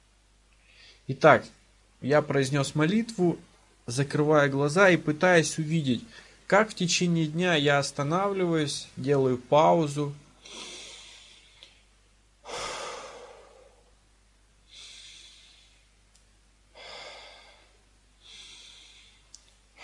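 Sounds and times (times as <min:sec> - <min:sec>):
slow deep breaths in and out: 0:00.6 - 0:01.1, 0:10.4 - 0:14.0, 0:14.6 - 0:16.1, 0:16.7 - 0:19.8
speech: 0:01.1 - 0:10.7.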